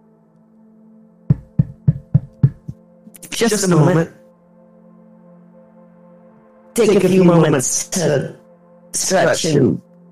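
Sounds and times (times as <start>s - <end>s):
solid knocks on a door: 1.3s - 2.8s
speech: 3.4s - 4.2s, 6.8s - 9.9s.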